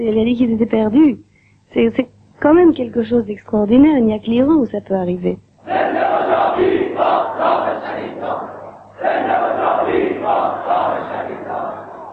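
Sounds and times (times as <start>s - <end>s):
speech: 0.0s - 5.9s
large crowd chanting political slogans in unison: 5.6s - 12.1s.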